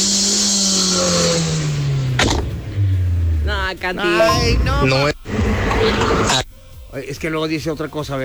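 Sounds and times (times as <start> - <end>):
car engine winding down: 0.0 - 6.4
speech: 3.7 - 5.2, 5.8 - 8.2.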